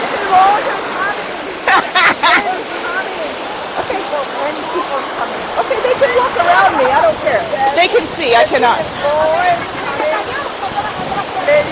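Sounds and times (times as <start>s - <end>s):
ocean waves hissing surf: 0.0s - 11.7s
speech: 0.3s - 0.8s, 6.6s - 9.8s
laughter: 1.6s - 2.8s, 9.0s - 11.7s.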